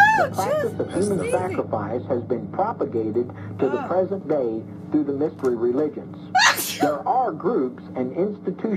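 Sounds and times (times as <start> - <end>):
speech: 0.2 - 8.7
person sneezing: 6.4 - 7.0.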